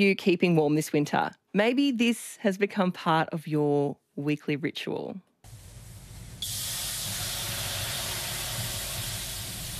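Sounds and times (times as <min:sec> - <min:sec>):
speech: 0:00.0 - 0:05.3
water thrown onto hot sauna rocks hissing: 0:05.5 - 0:09.7.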